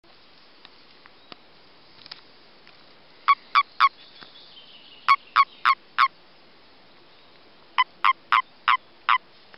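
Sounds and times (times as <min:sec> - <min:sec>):
Common toad croaking during breeding: 0:03.3 - 0:03.9, 0:05.0 - 0:06.1, 0:07.8 - 0:09.2.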